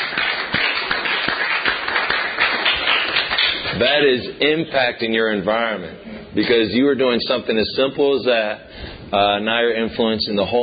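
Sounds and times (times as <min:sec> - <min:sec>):
audience clapping: 0:00.0 - 0:04.0
speech: 0:03.8 - 0:10.6.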